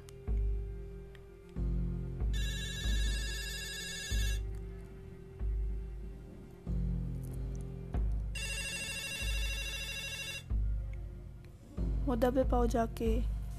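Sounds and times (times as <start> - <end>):
pulsing low drone of dramatic music: 0.0 - 13.5
telephone bell ringing: 2.4 - 4.4, 8.4 - 10.5
speech: 12.1 - 13.3.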